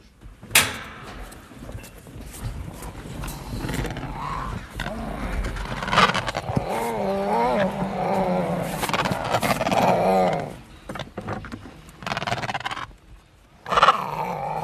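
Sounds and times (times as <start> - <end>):
Adélie penguins growling calls: 3.1 - 11.2, 11.9 - 13.0, 13.6 - 14.6.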